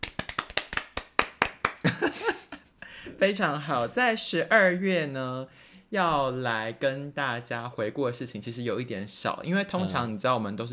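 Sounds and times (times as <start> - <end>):
hand clapping: 0.0 - 2.1
speech: 3.2 - 10.7.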